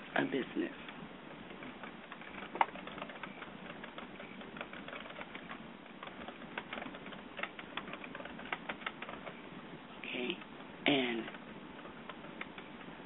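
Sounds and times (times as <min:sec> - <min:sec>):
speech: 0:00.2 - 0:00.9
typing on a keyboard: 0:01.5 - 0:09.4, 0:10.4 - 0:12.7.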